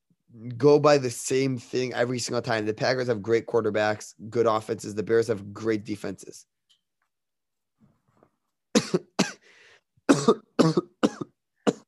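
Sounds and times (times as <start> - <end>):
speech: 0.4 - 6.6, 10.3 - 10.9
person coughing in a harsh fit: 8.8 - 9.5, 10.1 - 11.8
faint wheezy breath: 9.4 - 9.9.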